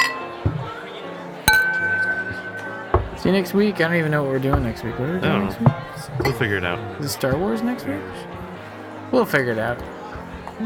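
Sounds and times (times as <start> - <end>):
glasses clinking in a toast: 0.0 - 0.6, 1.5 - 3.5
voices murmuring: 0.0 - 10.6
speech: 3.2 - 8.4, 9.1 - 9.9.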